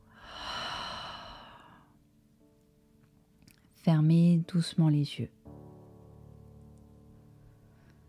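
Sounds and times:
slow exhale during meditation: 0.1 - 2.0
speech: 3.8 - 5.4.

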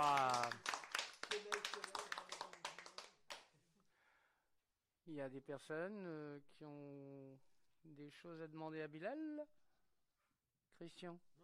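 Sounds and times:
speech: 0.0 - 0.3, 5.2 - 9.6, 10.7 - 11.4
small audience clapping: 0.0 - 3.5.

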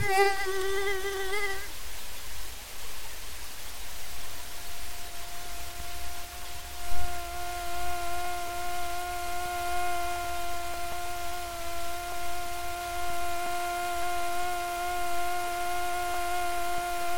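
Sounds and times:
mosquito buzzing in flight: 0.0 - 1.7, 4.2 - 17.1
faint hiss: 0.0 - 17.1.

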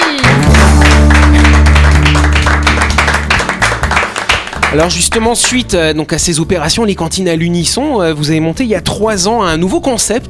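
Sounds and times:
applause from a small audience: 0.0 - 5.6
loud sustained music with deep bass notes: 0.2 - 10.2
speech: 4.7 - 10.2.

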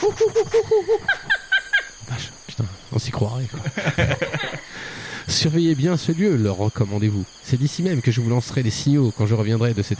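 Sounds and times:
speech: 0.0 - 1.0, 3.2 - 4.2, 5.3 - 9.9
monkeys hooting and whooping in jungle treetops: 0.0 - 2.1, 3.6 - 5.0
laughter: 3.5 - 4.9.

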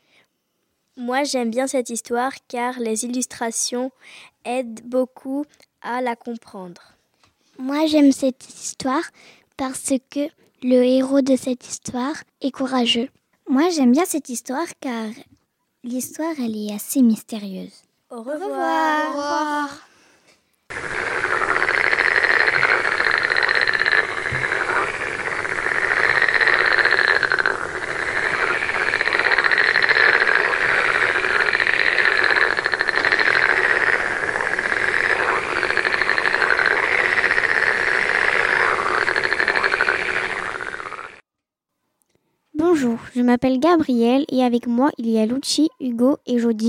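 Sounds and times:
speech: 1.0 - 7.0, 7.6 - 19.9, 20.7 - 21.4, 42.8 - 46.6
dense chorus of croaking frogs in a pond: 20.7 - 41.2.

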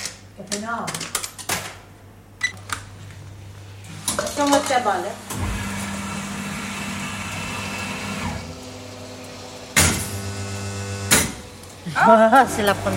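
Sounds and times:
speech: 0.5 - 1.2, 4.4 - 5.4, 12.0 - 12.9
coffee machine humming: 3.3 - 12.9.

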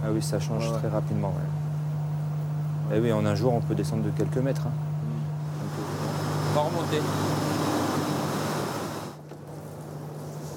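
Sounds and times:
speech: 0.0 - 1.7, 2.9 - 4.9, 6.6 - 7.6
loud broad rushing roar: 5.4 - 9.2
steady low hum of a car engine driving along: 5.4 - 9.2.

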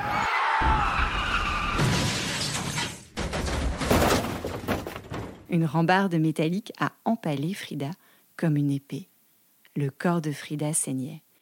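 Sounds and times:
tram metallic screech of braking: 0.0 - 2.5
loud impacts of a tram crashing into a bus: 0.6 - 5.5
glass shattering: 1.7 - 5.4
debris clattering: 1.7 - 5.5
speech: 5.5 - 9.1, 9.8 - 11.2.

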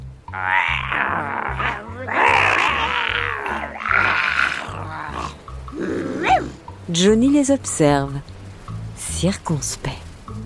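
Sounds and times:
speech: 0.3 - 0.6, 6.9 - 8.3, 9.2 - 10.0
rising strained vocal squeal: 0.3 - 5.9
children making pirate-style grunts and growls: 0.3 - 6.6.

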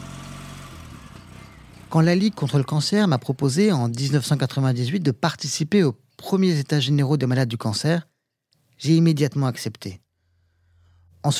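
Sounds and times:
motorcycle engine revving: 0.0 - 4.6
speech: 1.9 - 8.1, 8.8 - 10.0.

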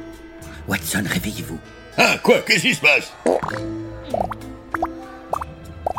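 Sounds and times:
speech: 0.7 - 3.8
bubbles gurgling and popping in a liquid: 3.3 - 5.9.

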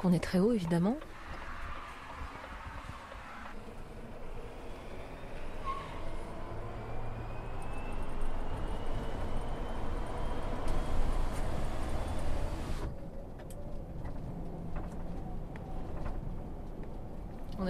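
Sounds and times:
speech: 0.0 - 1.2
air friction and road noise in an accelerating electric truck cab: 1.0 - 17.3.

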